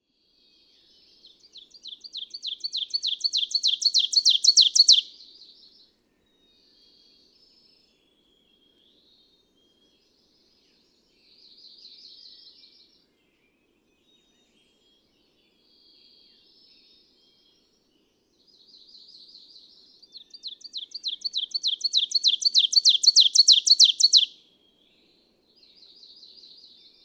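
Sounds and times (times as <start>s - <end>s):
ovenbird singing: 1.3s - 5.2s, 18.8s - 24.4s.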